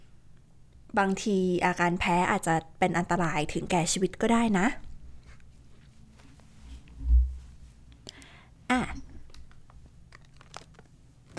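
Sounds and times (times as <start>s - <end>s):
low hum: 0.0s - 11.3s
speech: 0.9s - 4.8s
crinkly plastic zip-lock snack bag pressed shut: 9.3s - 11.3s.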